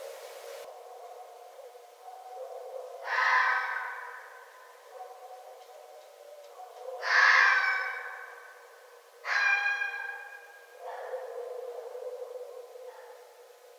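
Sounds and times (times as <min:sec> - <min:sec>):
red fox drawn-out harmonic wailing cries: 0:03.0 - 0:04.3, 0:07.0 - 0:08.3, 0:09.2 - 0:11.3.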